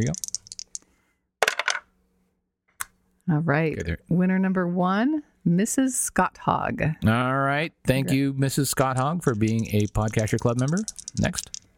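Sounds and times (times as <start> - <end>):
speech: 0.0 - 0.3, 3.3 - 11.6
polyhedral dice rolling on a hard surface: 0.0 - 0.8, 1.4 - 1.9, 8.8 - 11.7.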